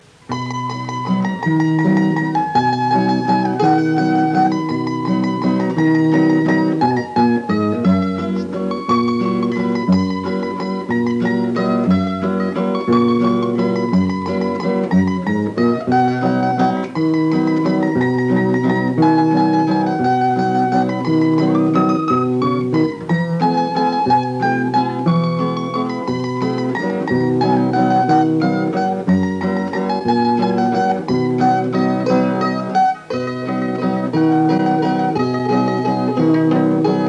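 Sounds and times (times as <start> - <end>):
guitar playing a waltz: 0.0 - 37.0
mandolin playing a waltz: 0.0 - 37.0.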